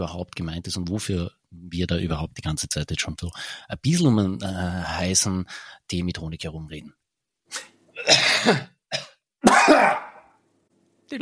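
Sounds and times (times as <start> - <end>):
speech: 0.0 - 7.7, 8.4 - 9.1, 11.1 - 11.2
person coughing: 7.5 - 10.3.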